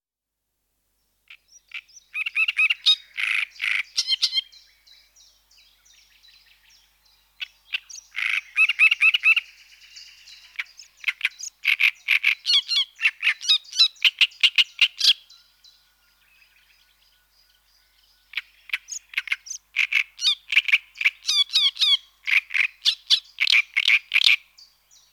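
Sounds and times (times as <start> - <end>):
great reed warbler singing: 1.0 - 25.1.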